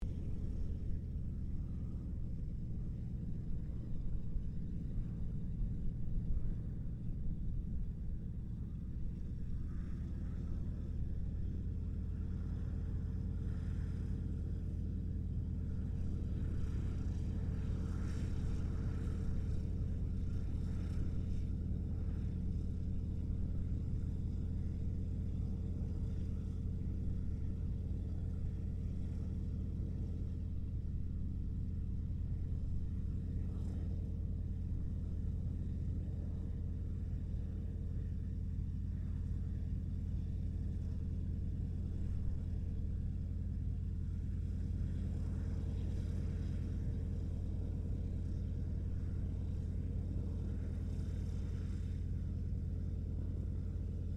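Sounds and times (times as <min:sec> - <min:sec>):
distant CA-13 Boomerang aircraft taxiing: 0:00.0 - 0:54.1.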